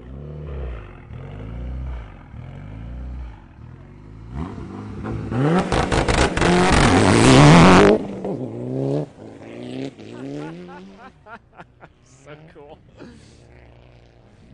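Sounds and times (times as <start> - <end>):
Mitsubishi Evo 8 rally car engine idling and revving: 0.0 - 14.5
laughter: 10.0 - 13.4.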